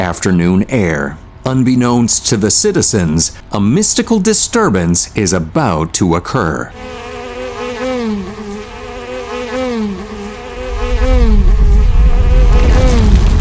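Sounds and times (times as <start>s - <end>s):
speech: 0.0s - 7.2s
bees buzzing around a hive: 6.5s - 13.3s
deep low rumble: 10.6s - 13.3s.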